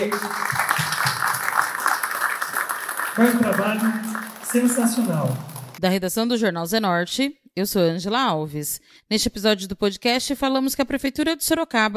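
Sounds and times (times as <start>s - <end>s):
speech: 0.0s - 0.5s, 3.2s - 11.9s
audience applause: 0.0s - 5.8s.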